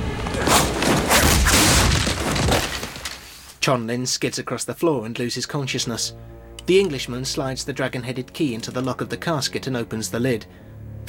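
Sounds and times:
body crashing through wooden lattice partition: 0.0s - 3.6s
speech: 3.6s - 11.0s.

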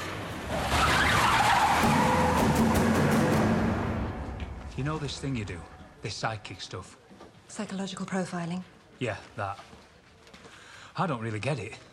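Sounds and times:
car tires skidding: 0.0s - 4.8s
car engine roaring while racing off: 0.0s - 5.8s
speech: 5.0s - 9.8s, 11.0s - 11.9s.

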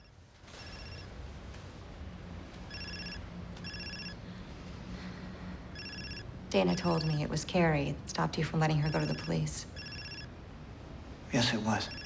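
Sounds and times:
mobile phone bright electronic ringtone: 0.0s - 1.1s, 2.7s - 4.2s, 5.7s - 7.2s, 8.8s - 10.3s, 11.7s - 12.0s
speech: 6.6s - 9.8s, 11.3s - 12.0s.

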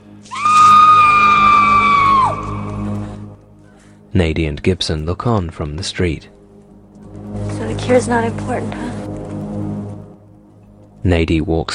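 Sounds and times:
woman screaming in agony: 0.3s - 2.7s
speech: 4.2s - 6.4s, 7.9s - 8.9s, 11.0s - 11.7s.

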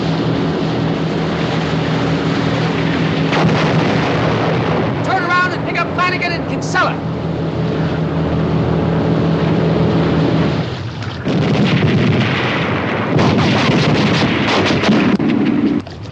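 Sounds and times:
churning water: 0.0s - 16.1s
loud steady roar: 0.0s - 16.1s
rapid bursts of gunfire at frogmen in the water: 2.6s - 7.1s, 10.8s - 15.9s.

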